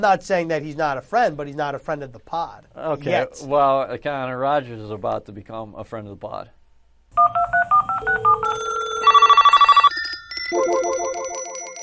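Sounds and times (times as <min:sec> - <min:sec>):
speech: 0:00.0 - 0:06.6
electronic telephone ringing: 0:07.2 - 0:11.8.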